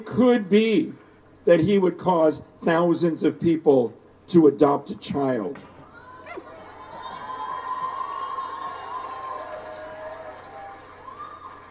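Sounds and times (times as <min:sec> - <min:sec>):
speech: 0:00.0 - 0:05.7
large audience cheering and yelling: 0:05.8 - 0:11.7
scattered high shouts and whoops: 0:05.8 - 0:11.7.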